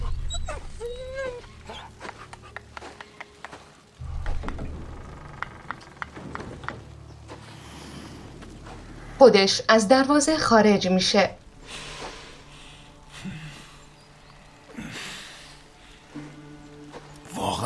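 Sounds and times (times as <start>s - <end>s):
dog whimpering in high wavering whines: 0.0s - 2.3s
steady low rumble: 3.8s - 16.8s
speech: 9.2s - 11.4s.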